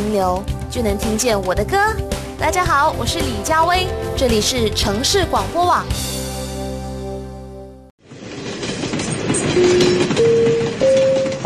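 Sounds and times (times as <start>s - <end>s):
speech: 0.0s - 6.3s
electric train at a station rumbling with motor whine: 8.0s - 11.4s.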